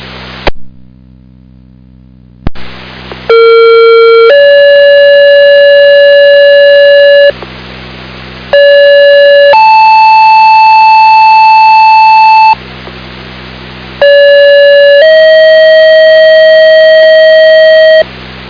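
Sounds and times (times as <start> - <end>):
two-tone ambulance pager activation tones sent off a radio tower: 3.3 - 7.4, 8.5 - 12.6, 14.0 - 18.1.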